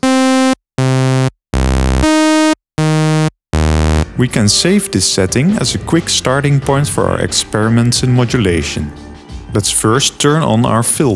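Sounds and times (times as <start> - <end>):
harsh buzzy sawtooth synthesizer notes: 0.0 - 4.2
speech: 4.2 - 11.1.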